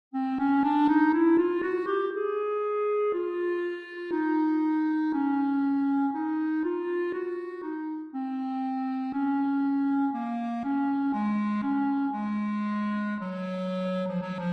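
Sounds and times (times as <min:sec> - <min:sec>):
clarinet quintet playing: 0:00.2 - 0:14.5.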